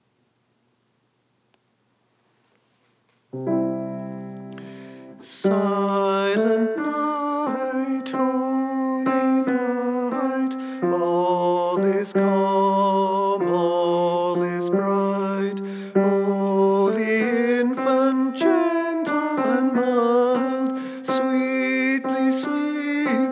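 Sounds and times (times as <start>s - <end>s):
tenor voice singing: 5.2s - 23.3s.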